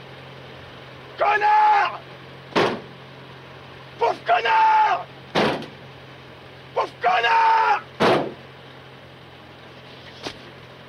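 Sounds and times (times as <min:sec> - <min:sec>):
low steady hum: 0:00.0 - 0:10.8
speech: 0:01.2 - 0:02.0
head-butts against a car body with metallic ring: 0:02.5 - 0:02.9, 0:05.4 - 0:05.8, 0:08.0 - 0:08.4.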